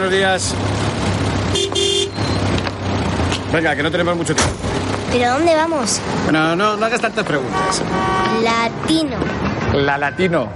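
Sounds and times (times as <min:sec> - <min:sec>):
speech: 0:00.0 - 0:02.5, 0:03.5 - 0:10.5
steady street traffic rumble: 0:00.0 - 0:10.5
short car horn toot: 0:01.5 - 0:02.4, 0:07.5 - 0:08.5.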